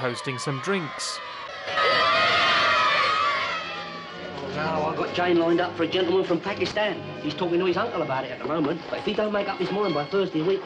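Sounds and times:
speech: 0:00.0 - 0:02.3, 0:04.6 - 0:10.6
several girls screaming together: 0:00.0 - 0:04.3.

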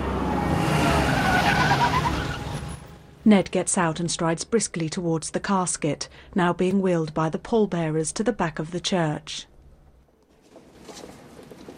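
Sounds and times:
Porsche engine and tyre noise pulling up to a church: 0:00.0 - 0:03.2
speech: 0:03.2 - 0:09.5.

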